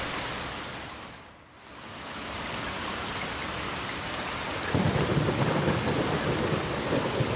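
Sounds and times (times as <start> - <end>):
dense rain of a summer evening thundershower: 0.0 - 7.3
deep rolling rumble of thunder: 4.7 - 7.3.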